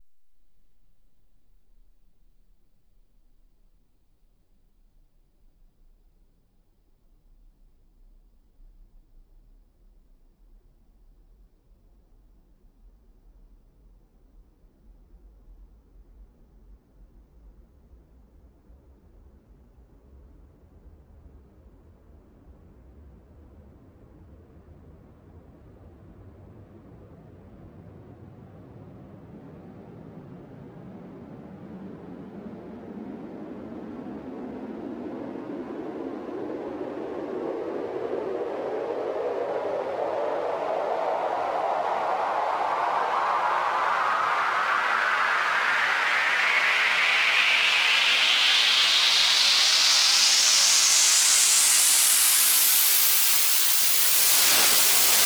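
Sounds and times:
long sweep: 0:33.3 - 0:55.2.

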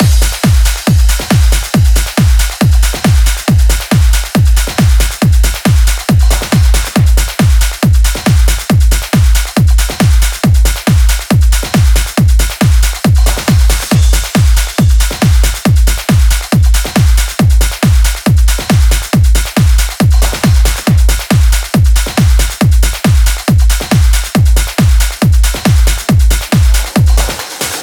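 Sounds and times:
drum and percussion mix at 138 BPM: 0:00.0 - 0:27.8.

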